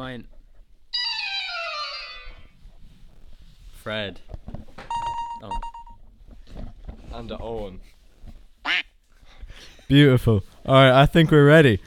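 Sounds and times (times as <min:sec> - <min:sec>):
speech: 0:00.0 - 0:00.4, 0:03.8 - 0:04.6, 0:05.4 - 0:05.7, 0:07.1 - 0:08.0, 0:09.9 - 0:11.8
electronic quiz buzzer beeps: 0:04.9 - 0:06.0.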